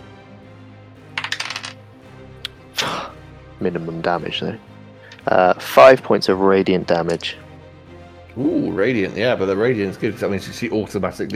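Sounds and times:
dice clattering across a hard table: 1.2s - 1.8s
speech: 3.6s - 7.4s, 8.4s - 11.3s.

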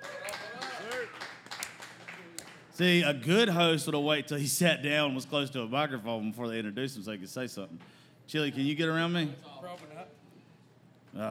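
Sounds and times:
whoops and cheers: 0.0s - 1.2s
crowd applauding: 0.0s - 2.7s
speech: 2.8s - 10.2s.

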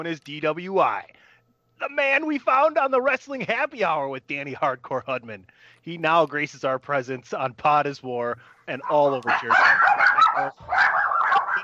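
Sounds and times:
speech: 0.0s - 11.1s
chorus of dogs barking together in a dense clamor: 8.8s - 11.6s.

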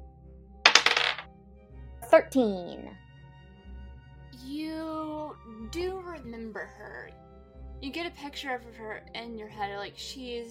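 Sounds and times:
dice rolled on a hard table in a game: 0.7s - 1.3s
speech: 2.1s - 3.0s, 4.4s - 7.2s, 7.8s - 10.4s.

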